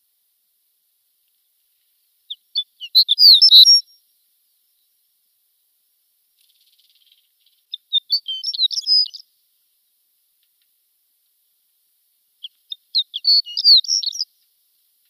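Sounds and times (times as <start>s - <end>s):
shore lark singing: 2.3s - 4.0s, 6.6s - 9.3s, 12.4s - 14.4s.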